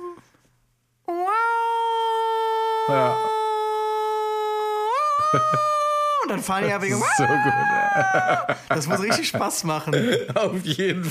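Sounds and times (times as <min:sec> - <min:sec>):
person imitating the mechanical siren of a New York fire engine: 0:01.1 - 0:06.2, 0:06.9 - 0:08.5
speech: 0:02.9 - 0:03.3, 0:05.3 - 0:11.0
laughter: 0:05.1 - 0:11.0.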